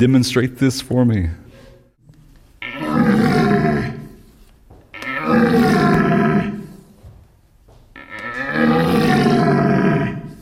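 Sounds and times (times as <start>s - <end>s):
speech: 0.0s - 1.4s
red deer stag rutting call imitated by a person grunting into a two-pipe caller: 2.6s - 4.3s, 4.9s - 6.9s, 8.0s - 10.4s.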